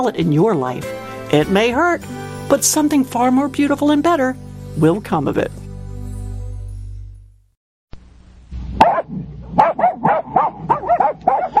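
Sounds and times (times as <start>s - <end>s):
speech: 0.0s - 5.6s
dog barking in sharp yaps: 8.8s - 11.5s.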